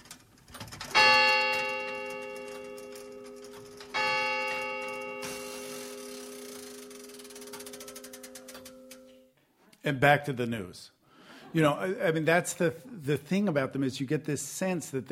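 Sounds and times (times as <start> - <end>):
clock striking ringing chimes: 0.9 - 9.2
speech: 9.8 - 15.1.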